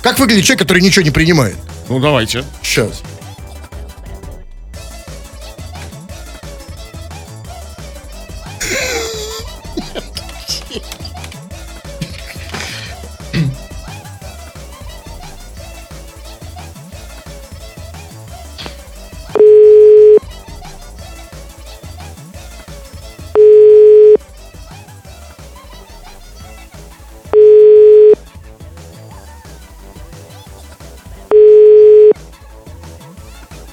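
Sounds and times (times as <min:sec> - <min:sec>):
speech: 0:00.0 - 0:03.2
continuous music bed: 0:00.0 - 0:33.7
laughter: 0:08.6 - 0:13.0
unanswered phone call ringback tones: 0:19.4 - 0:20.2, 0:23.4 - 0:24.2, 0:27.4 - 0:28.2, 0:31.3 - 0:32.2.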